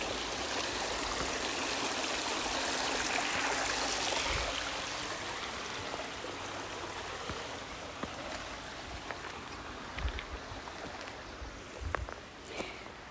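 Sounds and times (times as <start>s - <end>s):
water splashing and dripping: 0.0s - 11.2s
creek flowing over rocks: 0.0s - 13.1s.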